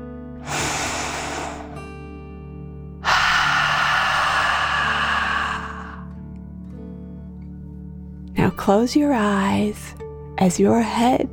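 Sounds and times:
deep breath in through nose: 0.4 - 2.2, 3.0 - 6.1
exhale blown out through the mouth: 0.4 - 2.3, 3.0 - 6.1
speech: 8.6 - 11.2.

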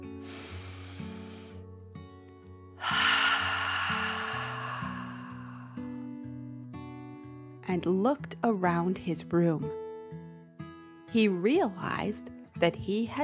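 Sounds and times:
deep dragon breath in and out: 0.0 - 1.6, 2.8 - 6.4
speech: 7.7 - 9.8, 11.1 - 13.2.

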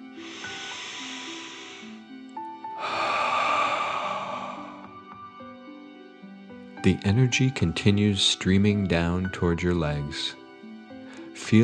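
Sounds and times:
forceful breath pushed out through the mouth in a guided breathing exercise: 0.0 - 2.1, 2.7 - 5.0
deep airy inhale through the nose in a guided breathing exercise: 0.0 - 5.3
soft sustained music: 0.0 - 11.6
speech: 6.8 - 10.4.

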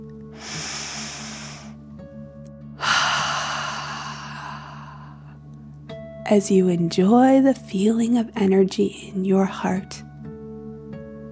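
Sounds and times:
slow deep breath in and out during guided meditation: 0.3 - 1.8, 2.8 - 5.4
speech: 6.3 - 10.1.

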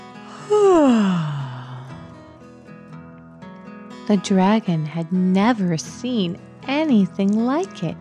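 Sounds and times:
narrator performing a long huge yawn: 0.2 - 2.1
speech: 0.5 - 1.3, 4.1 - 8.0.

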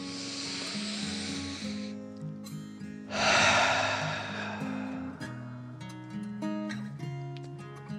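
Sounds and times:
slow deep breath in and out: 0.0 - 2.0, 3.1 - 6.0
gentle steady music: 0.0 - 7.9.

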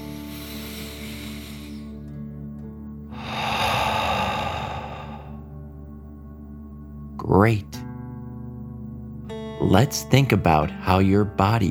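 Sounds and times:
deep breath pushed out through the mouth in a relaxation exercise: 0.0 - 2.0, 3.1 - 5.5
soft sustained music: 0.0 - 11.7
speech: 7.4 - 7.7, 9.6 - 11.7.

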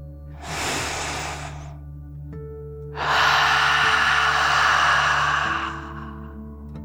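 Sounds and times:
deep breath drawn in through the nose: 0.3 - 1.8, 3.0 - 6.4
forceful exhale through the mouth in a relaxation breathing exercise: 0.4 - 1.8, 3.0 - 6.4.

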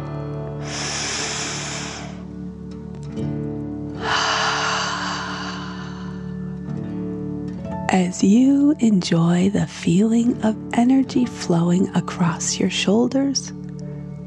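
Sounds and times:
quiet sustained music: 0.0 - 14.2
deep slow breath in and out during a guided relaxation exercise: 0.6 - 2.4, 3.9 - 6.9
speech: 7.9 - 13.6.

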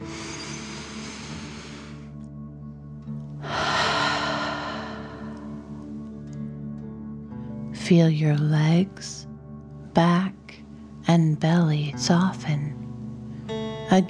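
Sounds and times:
long exhale out through the mouth: 0.0 - 2.1, 3.4 - 5.8
slow deep breath drawn in through the nose: 0.0 - 2.2, 3.4 - 5.8
soft sustained musical drone: 0.0 - 14.0
speech: 7.9 - 9.3, 10.0 - 10.3, 11.1 - 12.8.

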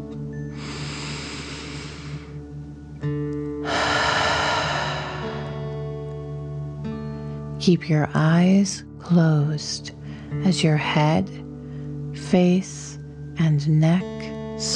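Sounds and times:
soft sustained music tones: 0.0 - 14.7
deep breath in and out during a guided relaxation exercise: 0.5 - 2.5, 3.6 - 6.1
speech: 7.6 - 11.4, 12.3 - 14.7.

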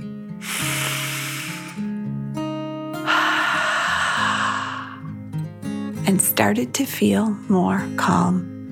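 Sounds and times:
soft sustained musical backing: 0.0 - 8.7
deep breath in and out during a calming breathing exercise: 0.4 - 1.9, 3.0 - 5.2
speech: 6.1 - 8.6.

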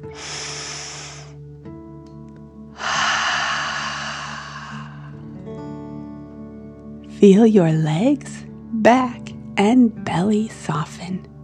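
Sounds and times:
deep inhale: 0.0 - 1.4, 2.8 - 5.4
forceful exhale through the mouth: 0.0 - 1.4, 2.8 - 5.2
speech: 7.2 - 11.3.

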